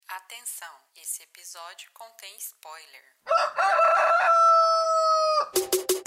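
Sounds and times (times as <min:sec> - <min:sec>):
speech: 0:00.3 - 0:05.8
rooster crowing: 0:03.3 - 0:05.6.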